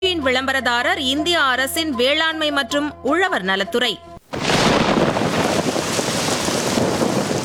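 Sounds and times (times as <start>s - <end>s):
speech: 0.2s - 4.1s
heavy rain pouring down: 4.2s - 7.4s.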